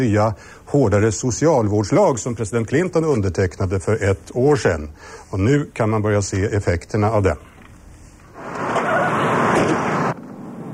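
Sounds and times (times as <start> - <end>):
speech: 0.0 - 7.5
faint hiss of noise: 0.0 - 8.7
car engine and road noise: 8.3 - 10.7.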